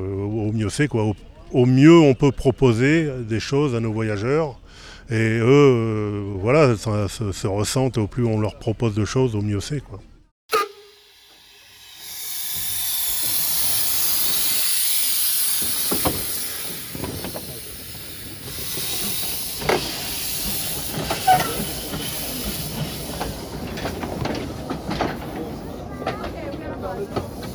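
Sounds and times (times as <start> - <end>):
speech: 0.0 - 10.1
steam locomotive of a steam railway hissing at a stop at the terminus: 10.5 - 27.5
clanks and knocks: 19.2 - 27.5.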